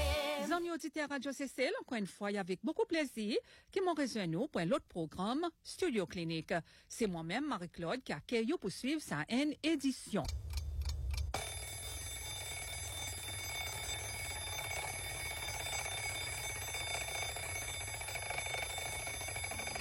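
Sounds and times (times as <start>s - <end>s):
speech: 0.5s - 10.5s
alarm clock ringing to wake someone for work: 11.4s - 19.8s.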